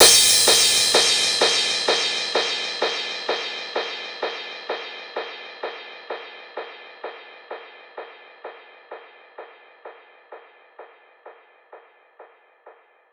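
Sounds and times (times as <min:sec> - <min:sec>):
crash cymbal: 0:00.0 - 0:09.0.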